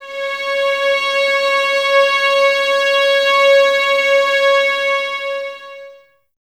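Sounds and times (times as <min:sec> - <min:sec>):
eleven violins playing C sharp 5: 0:00.0 - 0:06.0.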